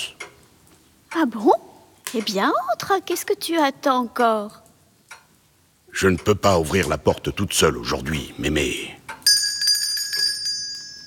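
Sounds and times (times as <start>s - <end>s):
speech: 1.2s - 4.6s, 6.0s - 8.9s
small bell rung at a door: 9.2s - 11.0s.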